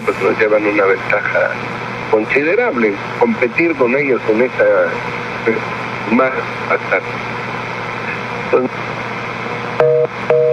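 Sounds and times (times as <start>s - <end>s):
constant hiss of telephone line noise: 0.0s - 10.5s
speech: 0.2s - 7.5s, 8.5s - 8.9s
telephone busy signal beeps after a call drops: 9.8s - 10.5s.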